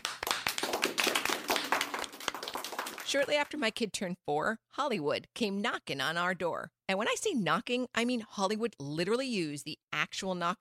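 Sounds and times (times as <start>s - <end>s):
audience applauding a performer: 0.0s - 3.4s
speech: 3.1s - 10.6s.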